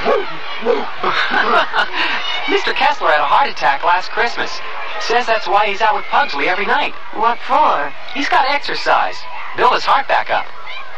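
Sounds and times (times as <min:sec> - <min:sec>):
dog barking on an evening walk: 0:00.0 - 0:00.9
laughter: 0:00.0 - 0:05.2
speech: 0:02.6 - 0:10.6.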